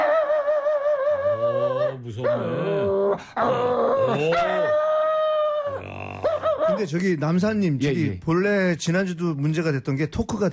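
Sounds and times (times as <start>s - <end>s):
man imitating a Chungcheong-province dog barking at a burglar: 0.0s - 7.0s
speech: 1.9s - 4.9s, 6.7s - 10.5s.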